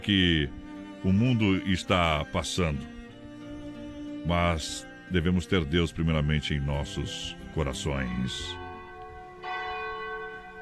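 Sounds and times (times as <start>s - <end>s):
speech: 0.0s - 3.0s, 4.2s - 8.6s
cathedral church bell ringing: 7.6s - 10.5s.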